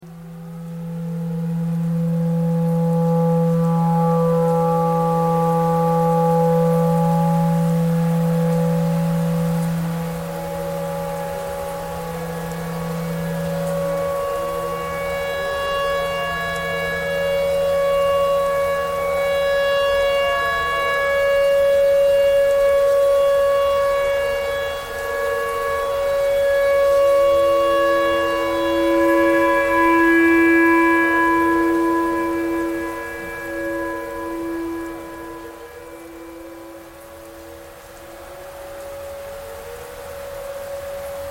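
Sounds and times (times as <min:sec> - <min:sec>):
tornado siren: 0:00.0 - 0:41.3
clarinet thread noise: 0:00.5 - 0:41.3.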